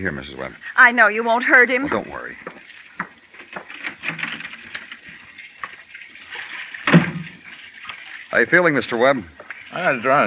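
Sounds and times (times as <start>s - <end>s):
speech: 0.0s - 2.8s, 8.4s - 10.2s
water running from a tap: 2.0s - 3.8s, 4.6s - 10.2s
water splash: 2.0s - 10.1s
soft clatters and bumps: 2.4s - 5.8s.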